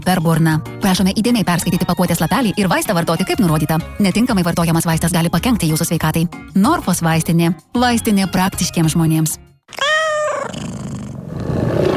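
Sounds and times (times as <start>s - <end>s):
speech: 0.0s - 9.8s
tiger roaring: 10.4s - 11.9s.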